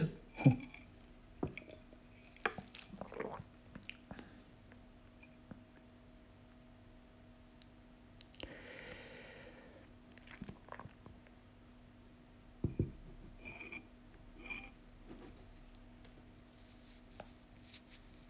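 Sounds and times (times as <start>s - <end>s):
faint steady hum: 0.0s - 18.2s
speech: 0.4s - 0.7s
slurping and swallowing coffee: 2.4s - 4.2s, 10.2s - 11.2s
coffee cup clinking: 12.6s - 14.8s.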